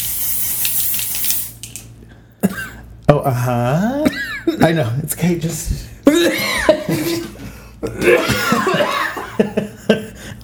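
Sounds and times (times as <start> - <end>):
person coughing and hacking after inhaling spray mist: 2.4 - 2.8
speech: 3.2 - 10.0.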